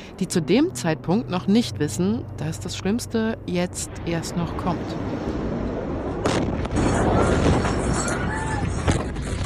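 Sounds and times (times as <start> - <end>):
speech: 0.2 - 5.3
continuous heavy roar of a large warehouse explosion: 3.9 - 9.4
sharp loud fireworks bangs: 5.0 - 9.4.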